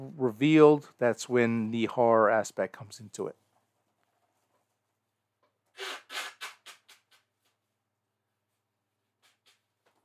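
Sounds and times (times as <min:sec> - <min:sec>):
speech: 0:00.1 - 0:03.4
person sniffing: 0:05.7 - 0:07.3
person blowing nose: 0:05.7 - 0:07.4, 0:09.2 - 0:09.8.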